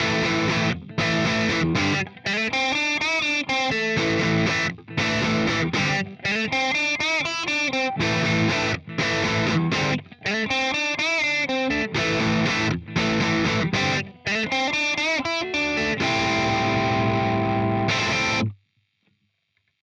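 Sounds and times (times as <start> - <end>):
British rock music: 0.0 - 18.5.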